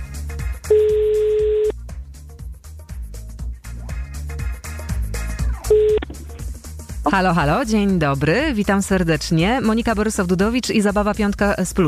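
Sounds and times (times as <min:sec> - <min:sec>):
rhythmic music: 0:00.0 - 0:11.8
ringback tones of an outgoing phone call: 0:00.7 - 0:01.7, 0:05.6 - 0:06.2
speech: 0:07.1 - 0:11.8.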